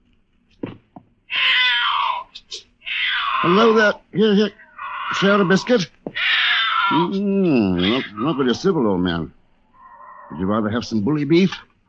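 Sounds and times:
soft thumps: 0.6s - 1.2s
thin black powerful tom cat yowling after coming down a chimney: 1.3s - 8.6s, 9.8s - 10.4s
speech: 3.4s - 6.0s, 6.9s - 9.4s, 10.3s - 11.7s.

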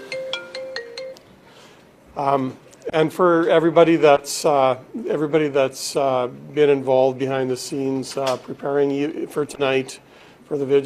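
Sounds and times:
mobile phone ringtone: 0.0s - 1.2s
speech: 2.2s - 10.8s.

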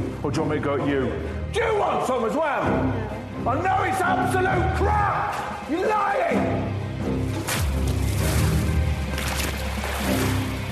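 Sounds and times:
speech: 0.3s - 6.8s
water thrown onto people during an interrogation: 7.2s - 10.7s.

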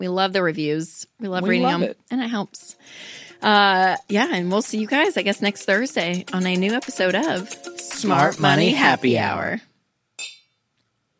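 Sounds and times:
speech: 0.0s - 9.7s
drinking glasses clinking in a toast: 10.2s - 10.6s.

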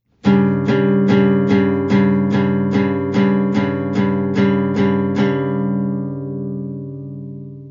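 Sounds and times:
clean guitar chord with a flattened dissonant note strummed: 0.1s - 7.6s.

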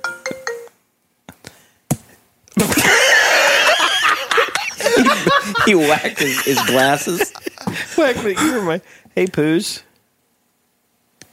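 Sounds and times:
short electronic phone ringtone: 0.0s - 0.7s
laughter: 2.6s - 8.8s
speech: 5.7s - 7.4s, 8.0s - 9.9s.

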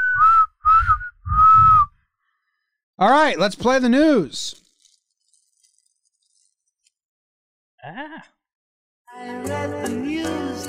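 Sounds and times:
person whistling blasts imitating a referee's halftime whistle: 0.0s - 2.0s
speech: 3.0s - 4.6s, 9.2s - 10.6s.

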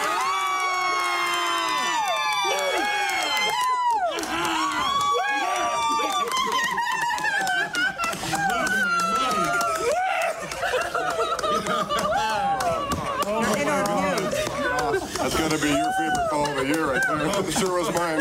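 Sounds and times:
group cheering and whooping in celebration: 0.0s - 18.2s
laughter: 4.0s - 18.2s.

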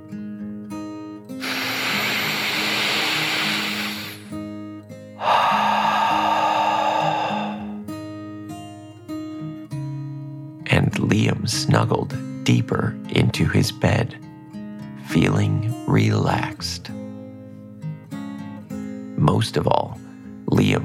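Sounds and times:
deep slow breaths in and out during a children's meditation tale: 1.4s - 4.4s, 5.1s - 7.9s
soft gentle music bed: 4.4s - 20.8s
speech: 11.1s - 14.2s, 15.1s - 17.0s, 19.3s - 19.9s.

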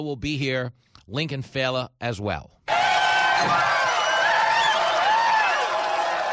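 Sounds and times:
speech: 0.0s - 3.9s
large crowd cheering and whooping: 2.7s - 6.3s
people shouting in a crowd: 2.7s - 6.3s.

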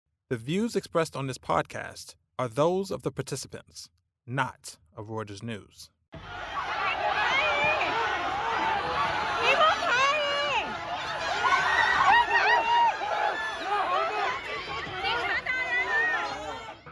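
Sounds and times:
speech: 0.3s - 6.5s
protest crowd shouting during police detentions: 6.2s - 16.8s.

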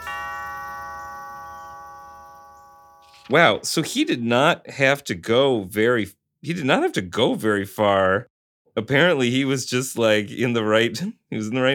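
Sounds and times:
doorbell chime at an old house in LA: 0.0s - 3.3s
speech: 3.3s - 11.7s.

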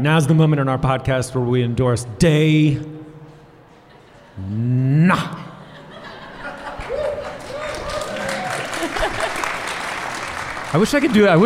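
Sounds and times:
speech: 0.0s - 3.0s, 4.4s - 5.5s, 10.7s - 11.4s
laughter: 3.8s - 9.8s
crowd applauding: 6.5s - 11.4s.

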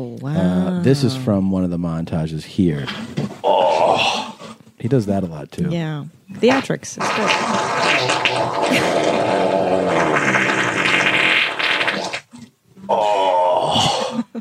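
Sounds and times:
speech: 0.0s - 3.4s, 4.8s - 9.2s
loud raspy rumbling fart: 2.8s - 4.6s, 6.5s - 14.3s.

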